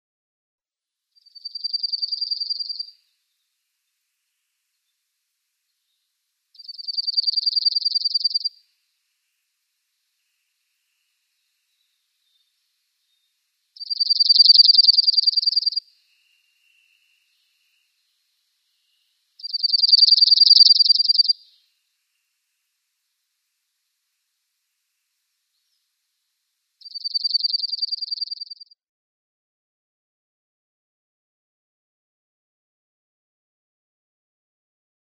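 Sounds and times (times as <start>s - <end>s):
Dark-eyed Junco singing: 1.2s - 3.6s, 5.7s - 8.6s, 11.3s - 21.7s, 26.8s - 28.8s.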